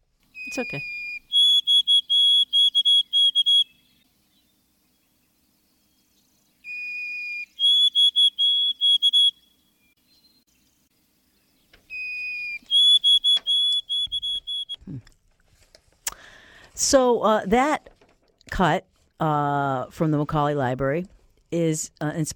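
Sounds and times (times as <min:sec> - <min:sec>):
white-throated sparrow singing a clear whistled song: 0:00.3 - 0:04.5, 0:05.8 - 0:10.4, 0:11.6 - 0:14.8
speech: 0:00.5 - 0:01.0, 0:16.9 - 0:17.9, 0:18.6 - 0:22.3.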